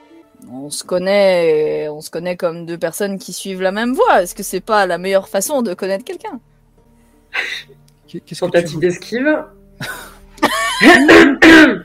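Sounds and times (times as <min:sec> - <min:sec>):
speech: 0:00.5 - 0:06.5, 0:07.4 - 0:10.0, 0:10.8 - 0:11.8
throat clearing: 0:10.8 - 0:11.8.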